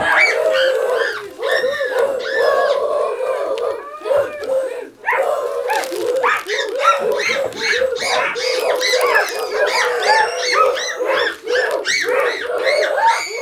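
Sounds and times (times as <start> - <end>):
troop of monkeys screaming and chattering: 0.0 - 13.3.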